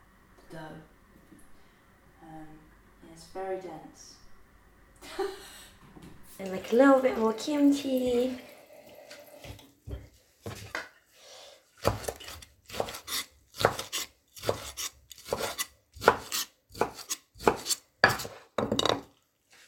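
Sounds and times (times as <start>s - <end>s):
speech: 2.3s - 4.2s, 5.0s - 5.5s, 6.4s - 8.5s
chef knife chopping food on a cutting board: 11.8s - 19.0s.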